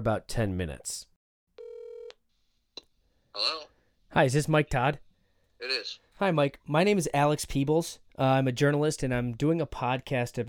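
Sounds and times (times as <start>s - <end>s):
speech: 0.0s - 1.1s, 3.4s - 5.0s, 5.6s - 10.4s
steady electronic phone dialing tone: 1.6s - 2.1s.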